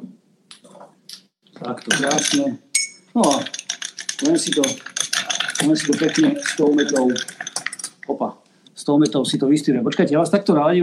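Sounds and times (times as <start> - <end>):
ice cubes dropped into a glass for a homemade mint drink: 1.7 - 2.6, 3.2 - 8.0
speech: 1.9 - 3.5, 4.2 - 4.9, 5.6 - 7.4, 8.1 - 10.8.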